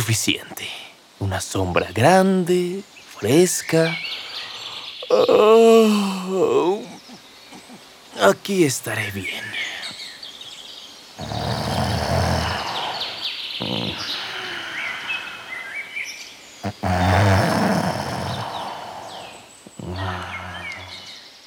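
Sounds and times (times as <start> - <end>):
birds chirping and twittering: 0.0 - 21.4
speech: 0.1 - 4.3, 5.1 - 7.1, 8.2 - 9.7
wolf snoring while sleeping under a tree: 11.2 - 14.8, 16.6 - 21.0.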